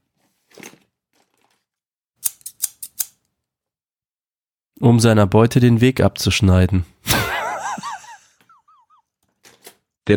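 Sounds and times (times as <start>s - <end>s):
scissors snipping: 2.2s - 3.2s
speech: 4.8s - 7.0s
laughter: 7.1s - 9.0s.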